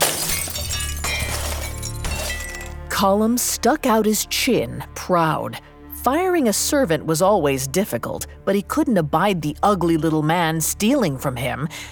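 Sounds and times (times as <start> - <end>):
glass wine bottle shattering on a hard floor: 0.0 - 2.9
speech: 3.0 - 11.9.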